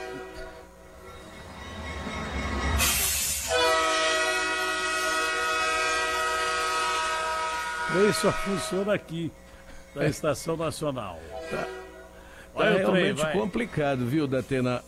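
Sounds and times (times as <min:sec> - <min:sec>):
long loud train horn blast with sustained harmonic tones: 0:00.0 - 0:01.8, 0:02.7 - 0:09.1, 0:11.1 - 0:12.5
train rumbling past through a station: 0:00.0 - 0:14.2
speech: 0:07.9 - 0:09.4, 0:10.0 - 0:11.8, 0:12.6 - 0:14.8.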